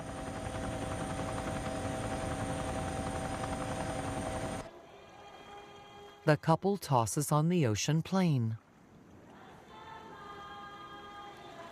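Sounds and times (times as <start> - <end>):
helicopter flying over the sea: 0.0 - 4.6
speech: 6.3 - 8.6.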